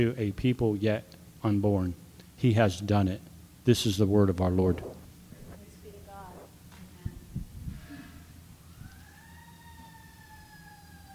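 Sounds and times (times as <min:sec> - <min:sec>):
speech: 0:00.0 - 0:05.0
emergency vehicle sirens wailing: 0:08.5 - 0:11.1.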